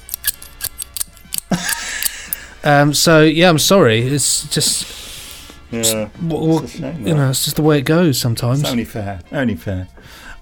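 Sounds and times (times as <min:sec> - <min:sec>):
pliers snapping open and shut: 0:00.0 - 0:02.5
laughter: 0:01.5 - 0:02.6
speech: 0:02.6 - 0:05.0, 0:05.7 - 0:10.4.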